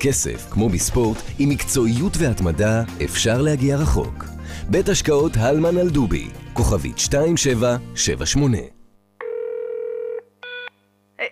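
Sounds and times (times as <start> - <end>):
speech: 0.0 - 8.8
telephone line electronic tones: 9.2 - 10.8.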